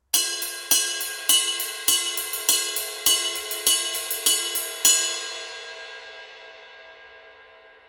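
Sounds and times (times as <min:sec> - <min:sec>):
22-inch dark medium ride cymbal: 0:00.0 - 0:05.8.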